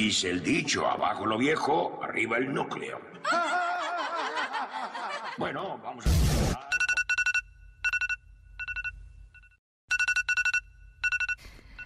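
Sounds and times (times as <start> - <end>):
speech: 0.0 - 3.5, 5.4 - 6.7
laughter: 3.2 - 5.9
mobile phone alarm ringing: 6.6 - 11.8.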